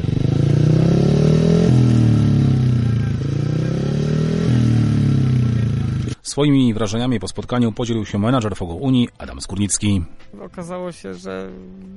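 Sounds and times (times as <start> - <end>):
speedway motorcycle engine started and revving: 0.0 - 6.2
speech: 6.4 - 11.9.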